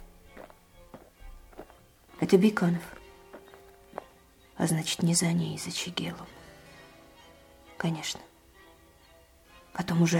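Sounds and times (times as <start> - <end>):
soft footsteps: 0.0 - 1.9, 2.8 - 4.2
speech: 2.3 - 3.0, 4.6 - 6.4, 7.8 - 8.3, 9.8 - 10.1.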